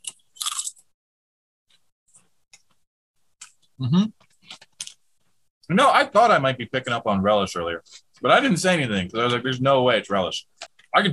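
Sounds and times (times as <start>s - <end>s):
potato chips crunching: 0.0s - 0.8s
person murmuring: 3.8s - 4.2s
speech: 3.8s - 4.2s, 5.7s - 11.1s.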